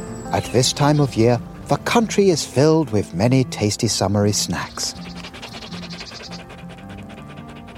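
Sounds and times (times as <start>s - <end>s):
speech: 0.3s - 5.1s
hot dog panting: 1.6s - 3.7s, 4.7s - 7.7s.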